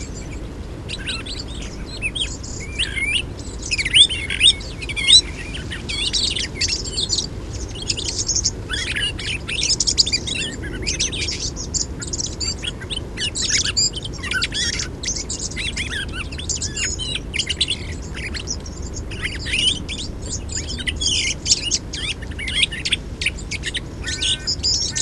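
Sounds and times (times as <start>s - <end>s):
Song thrush Turdus philomelos: 0.0s - 25.0s.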